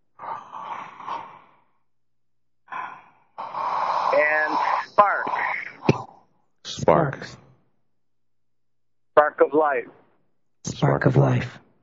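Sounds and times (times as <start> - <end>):
deep breaths during a guided breathing exercise: 0.0 - 7.8
speech: 4.2 - 5.1, 6.8 - 7.4, 9.4 - 10.0, 10.8 - 11.6.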